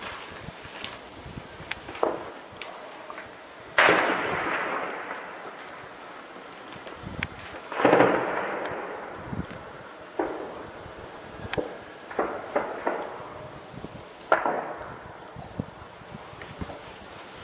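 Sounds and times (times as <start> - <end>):
artillery shelling blasts with rumble: 3.7 - 16.8.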